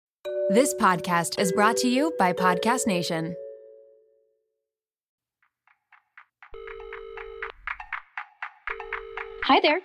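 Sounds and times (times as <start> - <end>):
speech: 0.5 - 3.4, 9.5 - 9.8
electronic tone: 6.6 - 7.5
telephone ringing: 6.6 - 8.0, 8.7 - 9.8.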